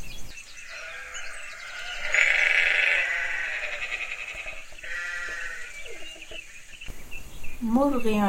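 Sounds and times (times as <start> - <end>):
steady hiss: 0.0 - 8.2
sheep bleating: 0.6 - 6.4.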